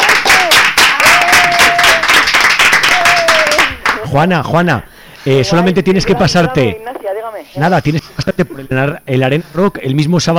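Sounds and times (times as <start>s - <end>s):
studio audience applause greeting a correct answer in a quiz game: 0.0s - 4.2s
speech: 4.1s - 10.3s.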